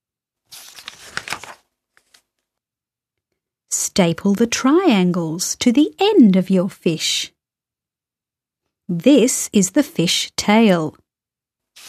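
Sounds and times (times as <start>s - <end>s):
scrap paper stuffed into a paper bag: 0.5s - 2.2s
speech: 4.0s - 7.3s, 8.9s - 11.0s.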